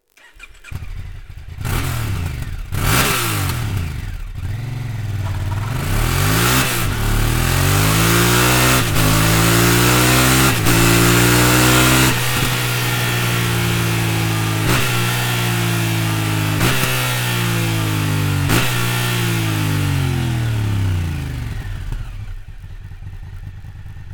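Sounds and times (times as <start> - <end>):
stock Akrapovic exhaust: 1.5 - 24.1.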